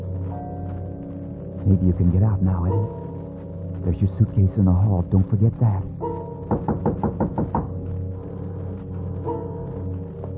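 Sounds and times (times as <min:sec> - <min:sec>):
speech: 0:01.7 - 0:03.0, 0:03.8 - 0:07.0
knocking on a door: 0:06.4 - 0:07.9.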